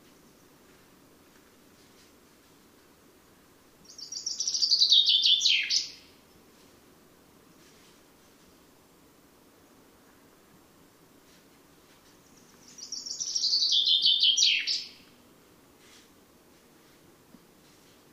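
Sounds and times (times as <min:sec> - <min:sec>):
common chaffinch Fringilla coelebs song: 0:03.7 - 0:06.4, 0:11.9 - 0:15.2.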